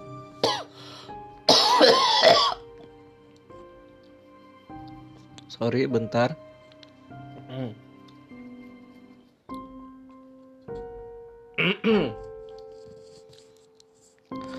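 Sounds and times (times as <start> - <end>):
person coughing: 0.4 - 0.7, 1.5 - 2.6, 11.6 - 12.2
speech: 1.8 - 2.5, 5.6 - 6.5, 7.6 - 7.8, 11.8 - 12.2.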